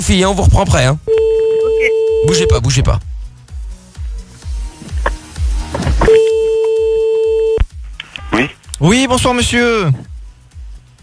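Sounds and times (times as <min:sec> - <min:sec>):
speech: 0:00.0 - 0:01.4, 0:02.2 - 0:03.1, 0:08.4 - 0:10.1
rhythmic thumping pulses on a telephone line: 0:00.6 - 0:07.8.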